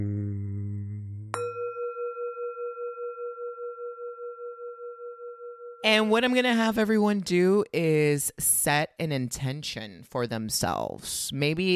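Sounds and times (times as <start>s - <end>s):
low rich tone: 0.0s - 6.1s
bell struck to start a meditation: 1.4s - 6.0s
speech: 5.8s - 11.7s.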